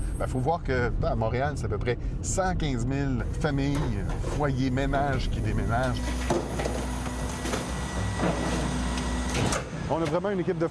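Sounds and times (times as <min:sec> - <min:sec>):
speech: 0:00.2 - 0:06.8, 0:09.5 - 0:10.6
garbage truck compactor grinding in Montreal: 0:03.8 - 0:10.2.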